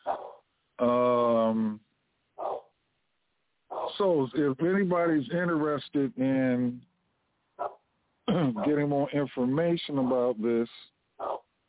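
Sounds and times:
dog barking: 0:00.0 - 0:00.4, 0:02.4 - 0:02.7, 0:03.7 - 0:04.0, 0:07.6 - 0:07.8, 0:08.4 - 0:08.9, 0:09.9 - 0:10.4, 0:11.2 - 0:11.4
speech: 0:00.8 - 0:01.8, 0:04.0 - 0:06.9, 0:08.3 - 0:10.8.

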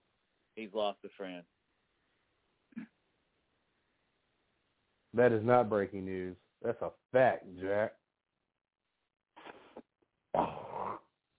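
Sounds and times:
speech: 0:00.6 - 0:01.6, 0:05.2 - 0:08.0
person hawking up phlegm from the throat: 0:09.4 - 0:11.1.

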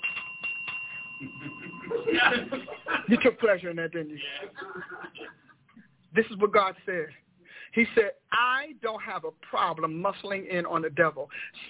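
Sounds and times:
bell struck with a thin metallic ring: 0:00.0 - 0:03.8
laughter: 0:01.2 - 0:03.5, 0:04.2 - 0:05.6
speech: 0:01.2 - 0:05.4, 0:06.1 - 0:11.6.

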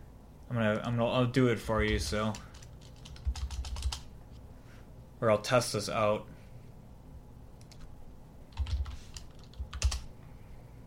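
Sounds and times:
speech: 0:00.5 - 0:02.5, 0:05.2 - 0:06.3
computer keyboard typing: 0:01.8 - 0:04.1, 0:07.6 - 0:07.9, 0:08.5 - 0:10.1.

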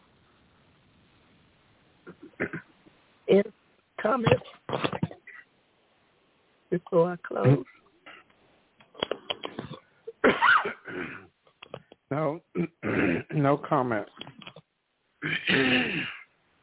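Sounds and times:
person coughing: 0:02.1 - 0:02.7, 0:09.0 - 0:11.3, 0:12.6 - 0:13.3, 0:15.2 - 0:16.3
throat clearing rasps: 0:02.1 - 0:02.7, 0:04.3 - 0:05.4, 0:09.0 - 0:11.3, 0:15.2 - 0:16.3
speech: 0:02.4 - 0:02.6, 0:03.3 - 0:04.8, 0:06.9 - 0:07.8, 0:13.4 - 0:14.2, 0:15.4 - 0:16.1.

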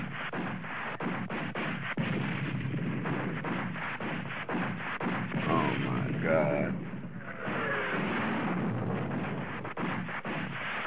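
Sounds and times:
constant roar of noise: 0:00.0 - 0:10.8
gunshots fired as warning shots: 0:00.0 - 0:10.8.

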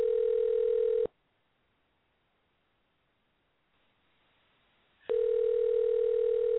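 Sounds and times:
telephone ringback tone ringing through toward voicemail: 0:00.0 - 0:01.1, 0:05.1 - 0:06.5.

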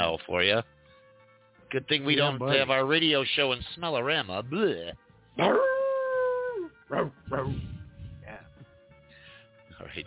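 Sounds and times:
speech: 0:00.2 - 0:00.8, 0:01.7 - 0:05.7, 0:06.9 - 0:07.8, 0:09.8 - 0:10.0
wet hairy dog howling: 0:05.4 - 0:07.5
wet hairy dog barking and yipping: 0:06.9 - 0:07.5.

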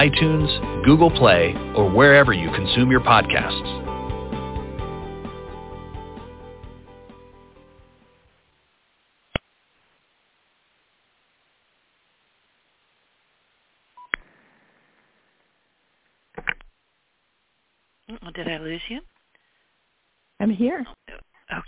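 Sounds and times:
speech: 0:00.0 - 0:03.6
music: 0:00.0 - 0:08.4.

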